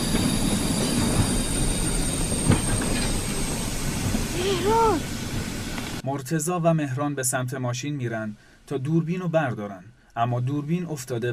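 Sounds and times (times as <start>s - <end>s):
train rail wheels rumbling while coming to a stop: 0.0s - 6.0s
speech: 6.0s - 11.3s.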